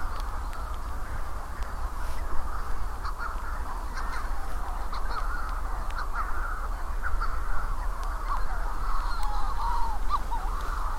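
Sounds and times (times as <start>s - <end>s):
Manx Shearwaters calling in chorus after dark on Skomer Island, Wales: 0.0s - 10.9s.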